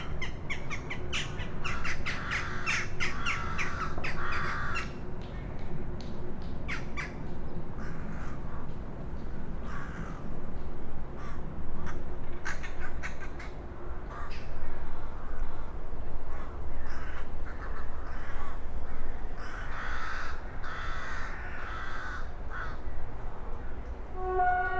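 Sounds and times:
noisy flock of rooks cawing over a river: 0:00.0 - 0:05.0, 0:07.8 - 0:08.8, 0:09.6 - 0:10.4, 0:11.1 - 0:22.9
steady low rumble: 0:00.0 - 0:24.2.

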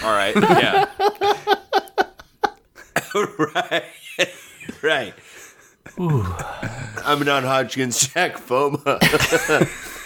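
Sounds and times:
speech: 0:00.0 - 0:00.9, 0:03.4 - 0:04.0, 0:07.1 - 0:09.9
laughter: 0:00.0 - 0:07.3, 0:08.8 - 0:10.0
hard coughing fit: 0:02.8 - 0:03.4, 0:05.9 - 0:07.4.

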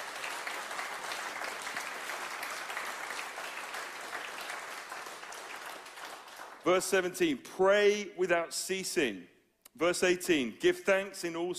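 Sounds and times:
audience applauding: 0:00.0 - 0:07.0
speech: 0:06.6 - 0:11.5.

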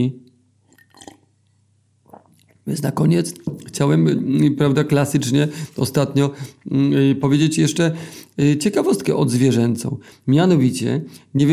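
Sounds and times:
speech: 0:00.0 - 0:00.2, 0:02.6 - 0:11.5
slurping and swallowing tea: 0:00.7 - 0:01.3, 0:02.1 - 0:02.6.

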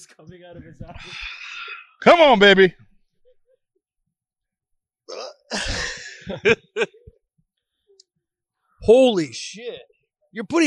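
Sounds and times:
speech: 0:00.0 - 0:01.4, 0:02.0 - 0:02.9, 0:05.1 - 0:07.0, 0:08.8 - 0:10.6
person hiccuping: 0:05.1 - 0:05.9
laughter: 0:05.5 - 0:07.2.

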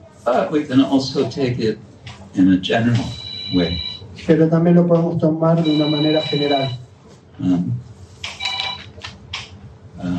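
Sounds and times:
speech: 0:00.2 - 0:06.8, 0:07.4 - 0:07.8
mobile phone electronic ringtone: 0:03.1 - 0:04.0, 0:05.6 - 0:06.8, 0:08.4 - 0:08.8.

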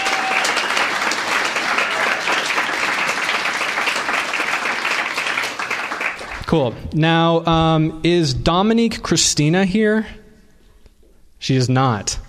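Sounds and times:
crowd applauding: 0:00.0 - 0:06.5
speech: 0:06.5 - 0:10.2, 0:11.4 - 0:12.2.

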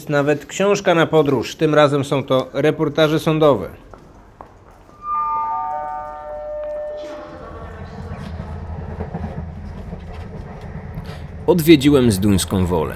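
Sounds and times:
speech: 0:00.0 - 0:03.8, 0:11.5 - 0:12.9
descending tonal whine: 0:04.8 - 0:11.0
train rolling along the rails: 0:06.4 - 0:12.9.

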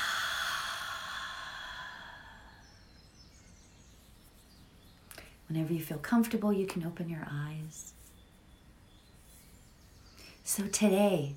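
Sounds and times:
deep breath in and out during a guided relaxation exercise: 0:00.0 - 0:02.9
speech: 0:05.5 - 0:08.0, 0:10.5 - 0:11.3.

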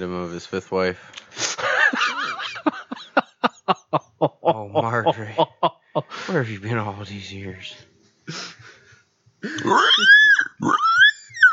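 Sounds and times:
speech: 0:00.0 - 0:02.0, 0:03.9 - 0:08.4, 0:09.6 - 0:10.2
laughter: 0:01.6 - 0:06.2
pig grunting and oinking: 0:09.5 - 0:10.9
pig squealing: 0:09.5 - 0:11.5.

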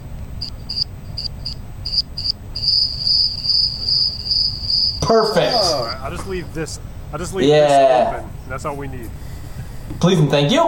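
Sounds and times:
low rumble: 0:00.0 - 0:10.6
cricket chirping: 0:00.4 - 0:06.1
speech: 0:05.1 - 0:09.2, 0:10.0 - 0:10.6.

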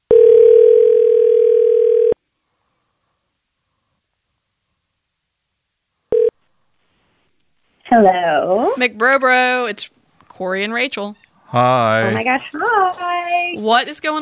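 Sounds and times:
telephone line tone of a call being dialed: 0:00.1 - 0:02.2, 0:06.1 - 0:06.3
speech: 0:08.0 - 0:14.2.

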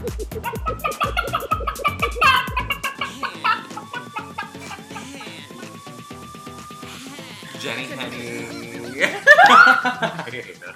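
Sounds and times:
squawk-like burst from a person imitating a chicken: 0:00.0 - 0:05.1
person imitating chicken clucks into a microphone: 0:00.0 - 0:05.6
laughter: 0:00.3 - 0:05.8, 0:07.0 - 0:10.7
speech: 0:09.8 - 0:10.7.

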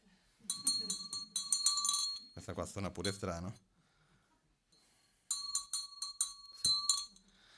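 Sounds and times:
small hand bell ringing: 0:00.5 - 0:03.2, 0:05.3 - 0:07.3
speech: 0:02.4 - 0:03.7.

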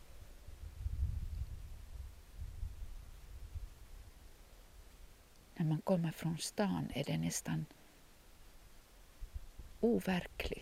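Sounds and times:
wind buffeting the microphone in uneven gusts: 0:00.4 - 0:04.0
speech: 0:05.6 - 0:07.8, 0:09.8 - 0:10.5.

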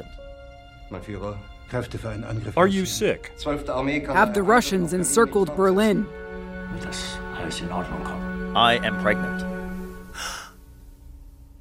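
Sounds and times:
speech: 0:00.9 - 0:09.5
sharp breathy gasp: 0:10.1 - 0:10.6.

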